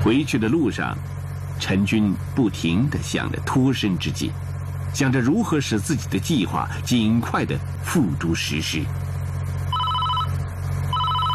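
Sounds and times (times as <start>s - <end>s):
speech: 0.0s - 9.0s
steady low hum: 0.0s - 11.3s
mobile phone ringing with warbling electronic tones: 9.7s - 11.3s.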